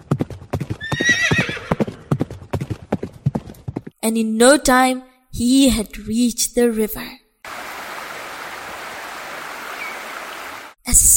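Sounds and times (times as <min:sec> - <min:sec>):
horse galloping toward a river: 0:00.0 - 0:04.0
horse whinnying: 0:00.8 - 0:01.9
speech: 0:04.0 - 0:07.2, 0:11.0 - 0:11.1.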